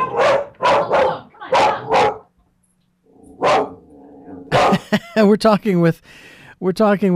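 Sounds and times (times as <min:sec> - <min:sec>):
dog barking at a chipmunk: 0:00.0 - 0:02.3, 0:03.4 - 0:03.8, 0:04.5 - 0:05.0
faint low hum: 0:00.0 - 0:05.4
speech: 0:04.9 - 0:07.1.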